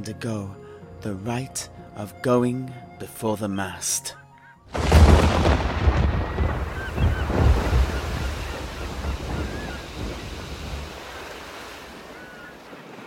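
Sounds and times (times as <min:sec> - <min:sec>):
speech: 0:00.0 - 0:05.6
strong storm wind roaring over a boat: 0:04.7 - 0:12.2
heavy stormy surf crashing against a boat: 0:04.8 - 0:13.0.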